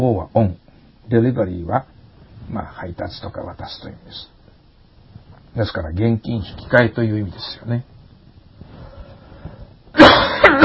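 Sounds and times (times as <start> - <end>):
speech: 0.0 - 1.9, 2.5 - 4.4, 5.5 - 7.9
person coughing harshly: 9.9 - 10.6.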